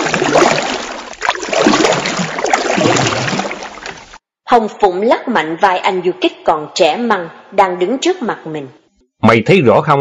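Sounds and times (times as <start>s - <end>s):
hurried paddling of a small boat across water: 0.0s - 4.2s
speech: 4.5s - 9.9s.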